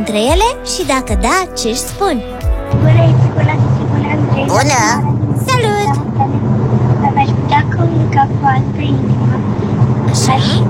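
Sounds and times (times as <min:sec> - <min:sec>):
speech: 0:00.0 - 0:03.2, 0:04.4 - 0:06.5, 0:08.2 - 0:10.6
car driving noise through open window: 0:00.0 - 0:10.6
wind buffeting: 0:00.4 - 0:10.6.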